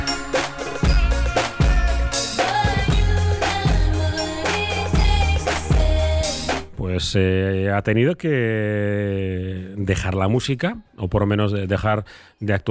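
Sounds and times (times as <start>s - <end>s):
pop-disco song with thumping beat and heavy bass: 0.0s - 6.7s
speech: 7.0s - 12.6s.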